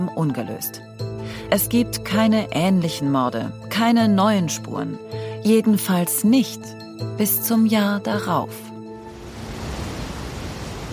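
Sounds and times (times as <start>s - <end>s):
speech: 0.0s - 8.7s
waterfall roar: 9.2s - 10.9s.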